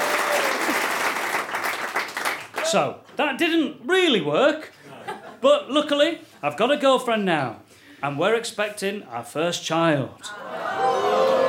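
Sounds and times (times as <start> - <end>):
audience applause: 0.0 - 2.8, 10.5 - 11.4
speech: 2.7 - 4.8, 5.4 - 10.5.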